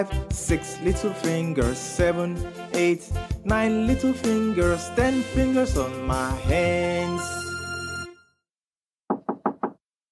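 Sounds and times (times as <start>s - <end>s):
speech: 0.0s - 7.4s
knocking on a door: 9.1s - 9.8s.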